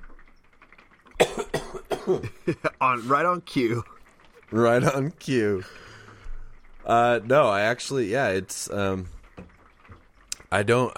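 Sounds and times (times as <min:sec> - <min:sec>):
person coughing in short harsh bursts: 0:01.2 - 0:02.4
speech: 0:02.1 - 0:05.9, 0:06.8 - 0:09.2, 0:10.5 - 0:10.9.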